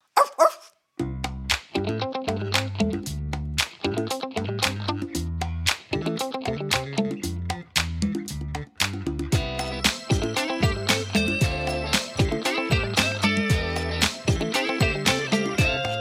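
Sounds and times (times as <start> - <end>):
dog barking: 0.1 - 0.7
upbeat instrumental music with plucked notes: 1.0 - 15.9.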